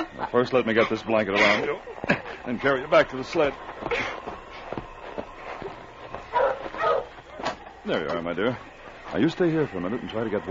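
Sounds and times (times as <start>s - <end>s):
laughter: 0.0s - 6.0s
speech: 0.3s - 4.2s, 7.9s - 10.5s
rustling, shuffling movement: 1.4s - 9.8s
dog barking: 6.3s - 7.6s.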